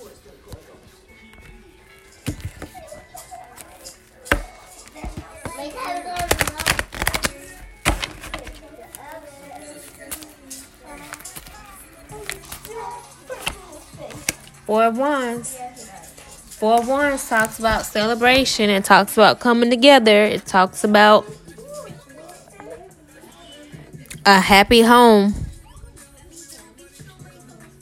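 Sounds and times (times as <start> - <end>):
faint voices murmuring: 0.0 - 24.6, 25.2 - 27.7
tarot card handling taps: 1.3 - 9.1, 11.0 - 14.6, 16.7 - 18.6
deck of tarot cards being shuffled: 4.3 - 8.6, 11.0 - 14.6
speech: 14.7 - 15.6, 16.6 - 21.4, 24.2 - 25.4.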